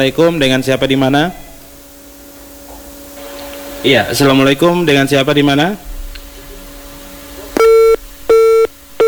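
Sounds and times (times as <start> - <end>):
speech: 0.0 - 1.4, 3.8 - 5.9
faint hum: 0.0 - 9.0
telephone busy tone after a call disconnects: 7.6 - 9.0.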